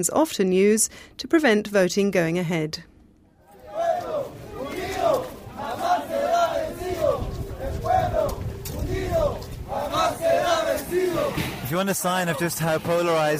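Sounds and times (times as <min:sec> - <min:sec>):
speech: 0:00.0 - 0:02.9, 0:11.7 - 0:13.3
rioting crowd shouting and chanting at a polling station: 0:03.4 - 0:13.3.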